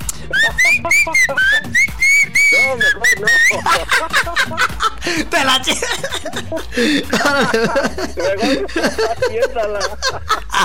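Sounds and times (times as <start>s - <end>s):
laughter: 0.0s - 10.6s
person whistling a melody: 0.1s - 3.9s
speech: 0.7s - 1.9s, 2.6s - 10.6s.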